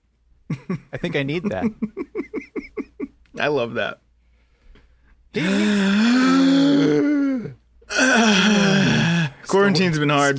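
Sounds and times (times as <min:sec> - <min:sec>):
speech: 0:00.5 - 0:02.7, 0:03.4 - 0:04.0, 0:05.3 - 0:10.3
laughter: 0:00.5 - 0:03.2
breathy sound: 0:04.2 - 0:09.5
two people letting out a deep breath as a groaning sigh: 0:05.3 - 0:09.5.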